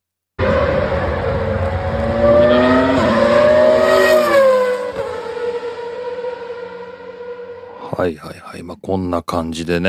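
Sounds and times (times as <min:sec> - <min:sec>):
older-era Renault V10 Formula One engine screaming at trackside: 0:00.4 - 0:07.8
speech: 0:08.9 - 0:09.8.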